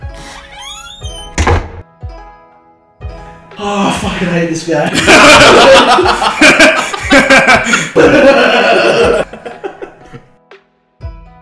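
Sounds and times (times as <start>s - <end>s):
door creaking open with a rising squeak: 0.0s - 1.8s
door slamming shut with a heavy thunk: 0.6s - 1.9s
speech: 3.6s - 6.6s, 7.6s - 9.2s
laughter: 4.9s - 10.2s.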